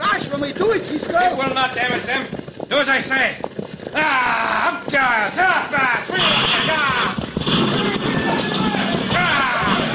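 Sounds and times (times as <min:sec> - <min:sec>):
horse teams galloping into a mission yard: 0:00.0 - 0:09.9
speech: 0:00.7 - 0:08.6
people shouting: 0:05.5 - 0:09.9.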